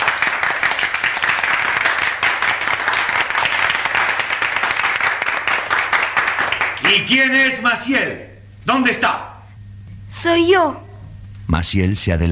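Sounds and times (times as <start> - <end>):
school crowd applause: 0.0 - 7.1
speech: 6.9 - 9.2, 10.2 - 10.8, 11.5 - 12.2.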